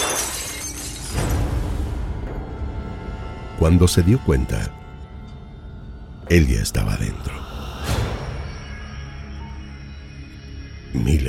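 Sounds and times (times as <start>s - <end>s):
living room window glass breaking: 0.0s - 1.8s
speech: 3.6s - 4.8s, 6.3s - 7.5s, 11.0s - 11.2s.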